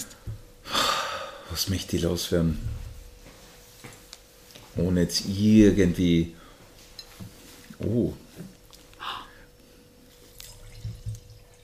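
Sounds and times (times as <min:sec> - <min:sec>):
faint hum: 0:00.0 - 0:11.6
speech: 0:01.5 - 0:02.8, 0:04.8 - 0:06.4, 0:07.8 - 0:08.5
Schildschar wine pouring into a glass: 0:10.3 - 0:11.6.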